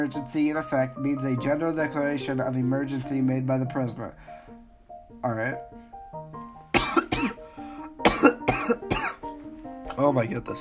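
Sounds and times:
speech: 0:00.0 - 0:04.4, 0:05.2 - 0:05.8, 0:10.0 - 0:10.5
sharp harsh coughs: 0:06.7 - 0:07.4, 0:08.0 - 0:09.2.

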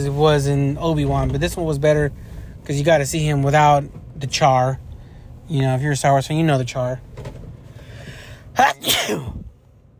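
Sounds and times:
speech: 0:00.0 - 0:04.8, 0:05.5 - 0:07.3, 0:08.6 - 0:09.4
loud sneeze: 0:08.6 - 0:09.5.

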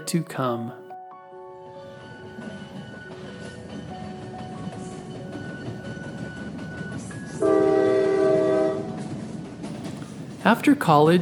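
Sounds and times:
speech: 0:00.1 - 0:00.8, 0:10.5 - 0:11.2
very long train rolling along tracks from Manchester to London: 0:01.7 - 0:11.2
loud sustained train horn blast: 0:07.4 - 0:09.0.

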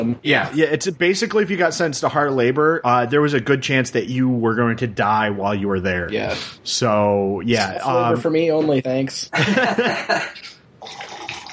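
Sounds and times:
speech: 0:00.0 - 0:10.6
laughter: 0:09.3 - 0:10.5
drink poured into a glass: 0:10.8 - 0:11.5.

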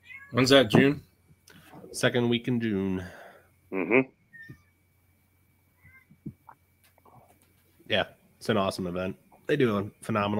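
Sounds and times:
cat meowing angrily: 0:00.0 - 0:00.5
low steady hum: 0:00.0 - 0:10.3
speech: 0:00.3 - 0:01.1, 0:01.9 - 0:04.6, 0:07.9 - 0:10.3.

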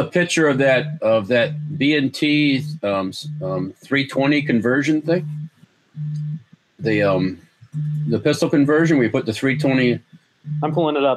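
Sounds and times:
mobile phone vibrating: 0:00.0 - 0:10.9
speech: 0:00.0 - 0:11.1.

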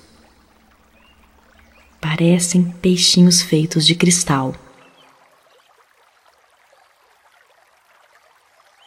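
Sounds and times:
clear spring water trickling: 0:00.0 - 0:08.8
speech: 0:02.2 - 0:04.6.

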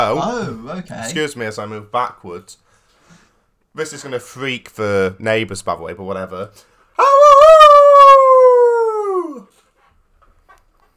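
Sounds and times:
speech: 0:00.0 - 0:02.7, 0:03.8 - 0:07.6
person imitating a wolf howl: 0:07.0 - 0:09.5.

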